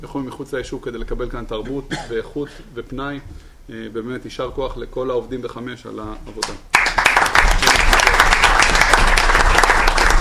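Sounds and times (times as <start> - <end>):
speech: 0.0 - 6.7
crowd applauding: 6.7 - 10.1.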